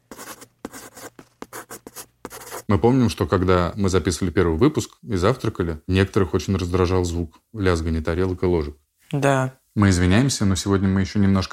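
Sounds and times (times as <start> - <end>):
hard pencil writing on paper: 0.0 - 2.7
speech: 2.7 - 11.5.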